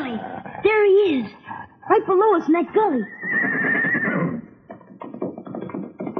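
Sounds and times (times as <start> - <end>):
speech: 0.1 - 3.9
horse whinnying on seeing people: 2.8 - 5.0
horse running off with uneven thumping and rustling: 4.3 - 6.1.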